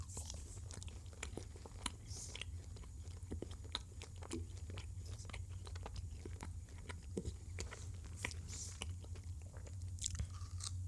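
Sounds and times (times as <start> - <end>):
chewing gummy sweets: 0.0 - 10.8.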